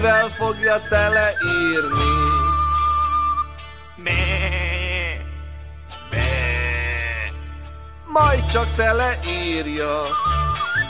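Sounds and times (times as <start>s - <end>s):
speech: 0.0s - 2.4s, 4.0s - 4.7s, 8.2s - 10.6s
sheep bleating: 4.0s - 5.3s, 6.2s - 7.5s.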